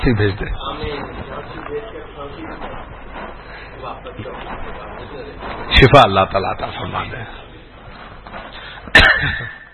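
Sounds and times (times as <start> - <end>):
speech: 0.0 - 7.5, 8.3 - 9.6
sharp cough with a raspy tail: 8.9 - 9.6.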